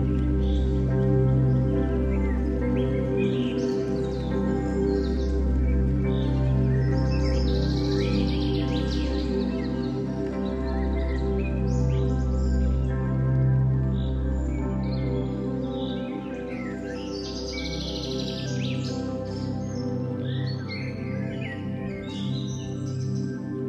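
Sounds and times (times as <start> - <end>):
gentle sustained music pads: 0.0 - 23.6
rain forest birds chirping and tweeting: 0.0 - 23.6.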